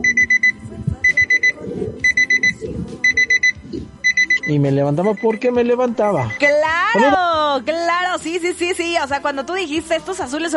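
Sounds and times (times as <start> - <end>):
low murmur: 0.0 - 5.3
fluorescent digital alarm clock beeping in quick high tones: 0.0 - 7.2
speech: 4.5 - 10.5.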